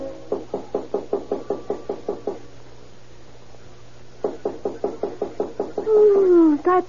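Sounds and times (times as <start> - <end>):
firm knocking on a door: 0.3 - 2.5, 4.2 - 5.9.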